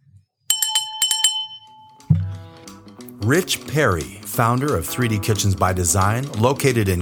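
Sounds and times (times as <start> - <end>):
small bright bell ringing: 0.5 - 2.1
speech: 3.2 - 7.0.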